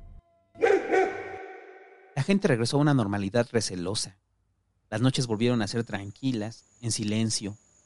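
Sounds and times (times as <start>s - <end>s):
dogs yelping and snarling: 0.6s - 1.9s
speech: 2.2s - 4.2s, 4.9s - 7.6s.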